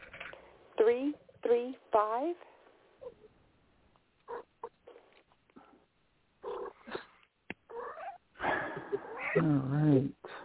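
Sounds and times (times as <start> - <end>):
speech: 0.9 - 2.5, 9.3 - 10.2
cat meowing: 4.3 - 5.0, 7.7 - 8.2, 9.0 - 9.5.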